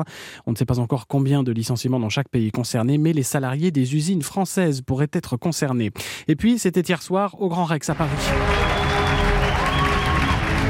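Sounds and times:
speech: 0:00.0 - 0:09.4
crowd applauding at a cinema screening of a TV series finale in Paris: 0:07.9 - 0:10.6.

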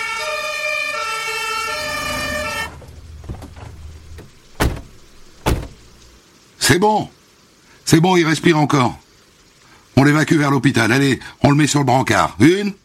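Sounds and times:
fire engine siren of firefighters called by a neighbor: 0:00.0 - 0:05.2
sharp thuds: 0:02.0 - 0:06.2
speech: 0:06.7 - 0:07.2, 0:07.9 - 0:09.0, 0:10.0 - 0:12.8.

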